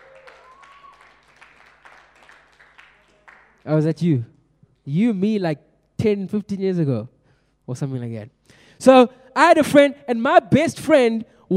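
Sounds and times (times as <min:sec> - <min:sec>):
small group clapping: 0:00.0 - 0:03.7
speech: 0:03.6 - 0:11.5.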